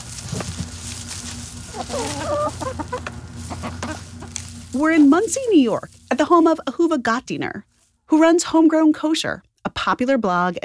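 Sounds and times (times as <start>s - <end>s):
low hum of a barnyard: 0.0s - 9.2s
chickens clucking: 0.2s - 6.7s
speech: 1.8s - 3.1s, 4.7s - 10.6s.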